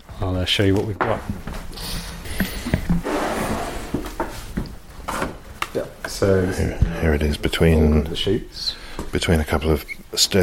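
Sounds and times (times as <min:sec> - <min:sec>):
speech: 0:00.2 - 0:02.5, 0:06.2 - 0:10.4
wooden drawer scraping open: 0:03.0 - 0:04.3.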